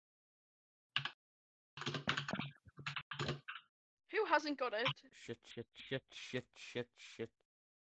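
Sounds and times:
faint typing on a computer keyboard: 1.8s - 3.6s
speech: 4.3s - 7.4s.

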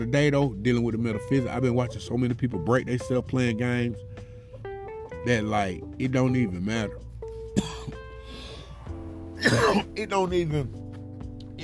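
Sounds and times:
speech: 0.0s - 4.2s, 5.2s - 8.0s, 9.4s - 10.8s
person coughing while driving a car: 7.5s - 8.1s, 9.4s - 10.0s.

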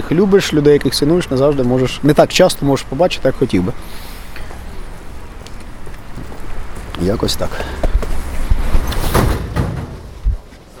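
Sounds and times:
steady low rumble of the metro carriage: 0.0s - 10.7s
speech: 0.1s - 4.1s, 7.0s - 7.8s
metro train doors sliding shut with hiss and thuds: 8.6s - 10.7s.

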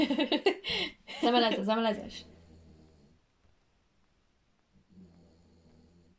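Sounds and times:
laughter: 0.0s - 1.6s
speech: 0.0s - 2.3s
soft low snores from a sleeping animal or person: 2.1s - 3.3s, 4.7s - 6.1s.

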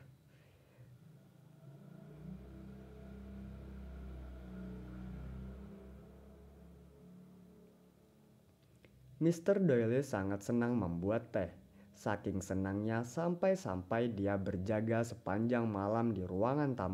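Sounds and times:
motorcycle engine passing outside: 0.9s - 8.4s
speech: 9.2s - 16.9s.

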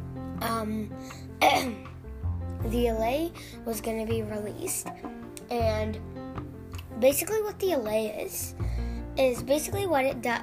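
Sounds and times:
speech: 0.4s - 1.9s, 2.6s - 6.2s, 7.0s - 10.4s
person clearing throat with something caught in it: 1.4s - 1.8s.

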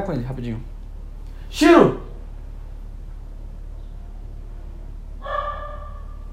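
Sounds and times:
speech: 0.0s - 0.8s, 1.5s - 2.0s
steady low hum: 0.0s - 6.3s
dog barking: 5.2s - 6.3s.

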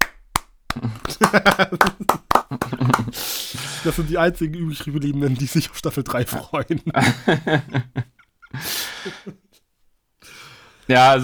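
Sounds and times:
hand claps: 0.0s - 3.3s
speech: 0.7s - 9.4s, 10.9s - 11.2s
people laughing: 0.8s - 4.1s, 4.7s - 9.4s.

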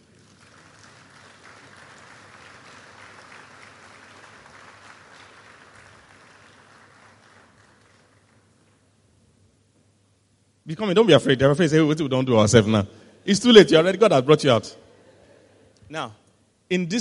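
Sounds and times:
audience clapping for a couple: 0.0s - 8.9s
speech: 10.7s - 14.8s, 15.9s - 16.9s.

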